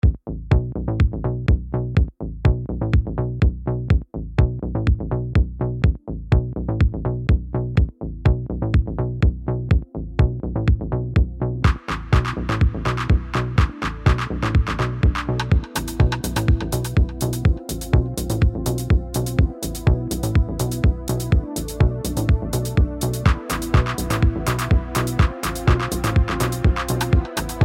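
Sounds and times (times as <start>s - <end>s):
bass drum patterns: 0.0s - 27.6s.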